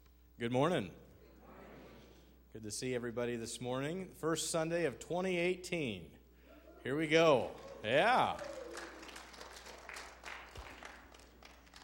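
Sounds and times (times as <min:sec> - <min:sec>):
speech: 0:00.4 - 0:01.1, 0:02.5 - 0:06.2, 0:06.8 - 0:08.9
audience applause: 0:07.4 - 0:11.8.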